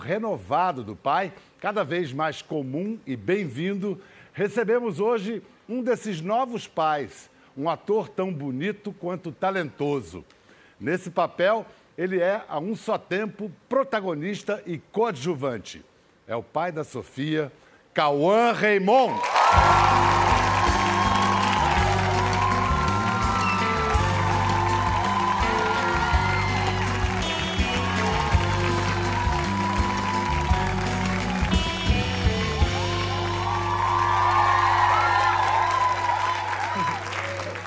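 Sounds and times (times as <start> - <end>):
speech: 0.0 - 20.2
studio audience applauding and cheering: 19.0 - 37.6
steady musical backing: 19.4 - 37.6.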